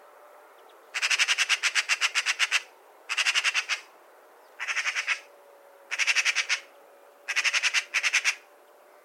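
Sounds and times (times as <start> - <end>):
Pica pica Eurasian magpie chattering: 1.0 - 3.9, 4.6 - 5.3, 5.9 - 6.7, 7.3 - 8.4.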